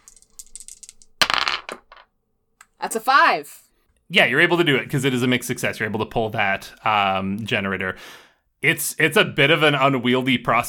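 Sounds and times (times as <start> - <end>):
two dice shaken, clattering and rattling: 0.0 - 2.1
speech: 2.8 - 10.6.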